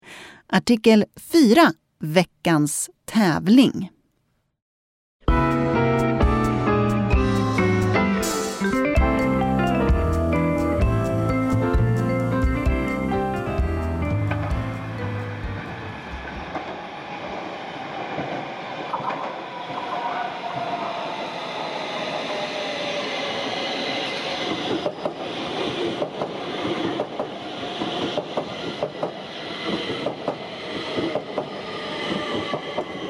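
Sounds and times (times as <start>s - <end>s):
speech: 0.5s - 4.0s
subway train pulling into a station: 5.7s - 33.0s.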